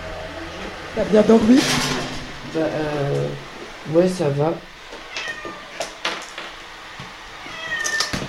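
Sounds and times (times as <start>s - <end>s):
speech: 1.0s - 1.9s, 2.5s - 4.7s
cat meowing: 5.1s - 5.9s, 7.4s - 8.2s.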